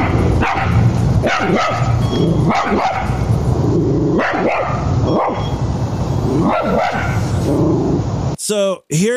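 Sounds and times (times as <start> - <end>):
dog barking behind the fence of a gated driveway: 0.0 - 3.3, 4.2 - 5.6, 6.3 - 7.3
steady noise: 0.0 - 9.1
speech: 8.5 - 9.1.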